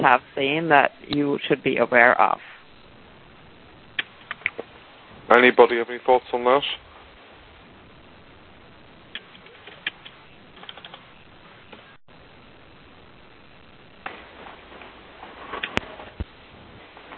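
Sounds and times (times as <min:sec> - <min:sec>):
speech: 0:00.0 - 0:02.5, 0:05.3 - 0:06.8
faint hiss: 0:00.0 - 0:17.1
typing on a computer keyboard: 0:10.6 - 0:11.0.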